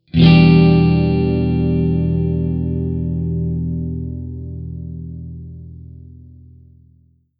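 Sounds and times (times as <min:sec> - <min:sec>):
E minor seventh chord: 0:00.2 - 0:05.7.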